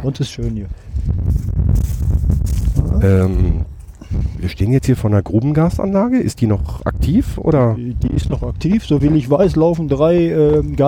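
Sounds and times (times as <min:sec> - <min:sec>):
speech: 0:00.0 - 0:03.7, 0:04.4 - 0:10.8
loud wind buffeting the microphone outdoors: 0:00.0 - 0:10.8
faint rustling: 0:00.5 - 0:04.6.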